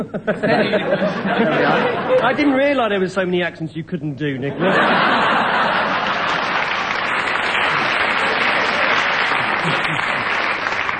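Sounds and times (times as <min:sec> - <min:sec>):
laughter: 0:00.0 - 0:02.6, 0:04.5 - 0:10.8
speech: 0:00.0 - 0:05.4, 0:09.6 - 0:10.0
large audience applauding: 0:05.2 - 0:10.9.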